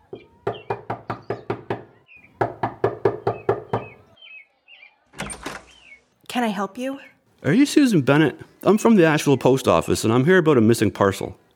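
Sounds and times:
rapid sharp knocks on a wooden door: 0:00.1 - 0:04.0
speech: 0:06.3 - 0:11.4.

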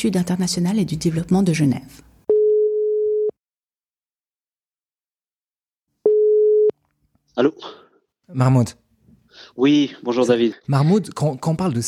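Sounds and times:
speech: 0:00.0 - 0:02.1, 0:07.4 - 0:08.8, 0:09.5 - 0:11.8
mid-pitched telephone call tones on a line: 0:02.3 - 0:03.4, 0:06.0 - 0:06.8.

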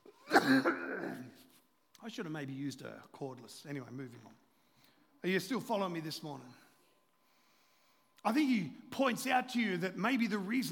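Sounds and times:
person coughing: 0:00.1 - 0:01.4
rough throat clearing: 0:00.3 - 0:01.3
speech: 0:00.5 - 0:00.8, 0:02.1 - 0:04.4, 0:05.2 - 0:06.6, 0:08.2 - 0:10.7.

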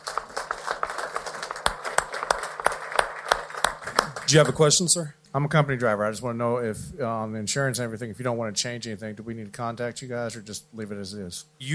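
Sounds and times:
louder claps in a regular rhythm: 0:00.0 - 0:04.7
crowd applauding: 0:00.0 - 0:04.8
speech: 0:04.3 - 0:11.7.

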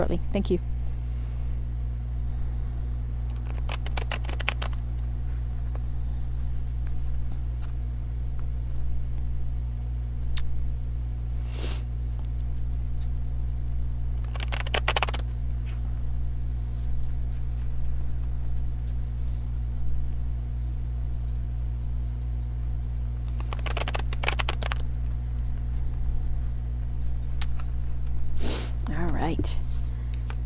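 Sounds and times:
steady low electrical hum: 0:00.0 - 0:30.4
tarot cards being shuffled: 0:03.3 - 0:05.0, 0:14.2 - 0:15.8, 0:23.3 - 0:24.9.

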